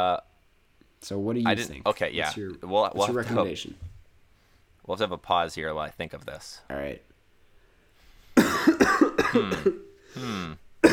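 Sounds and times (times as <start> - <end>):
speech: 0.0 - 0.3, 1.0 - 3.9, 4.8 - 7.1, 8.5 - 10.6
drawn-out voiced throat clearing: 8.4 - 10.9
person coughing: 8.4 - 10.9.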